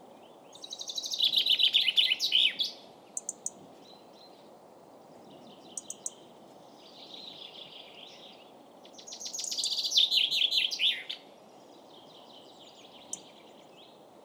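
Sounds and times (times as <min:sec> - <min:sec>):
common chaffinch Fringilla coelebs singing: 0:00.0 - 0:04.5, 0:05.4 - 0:14.0.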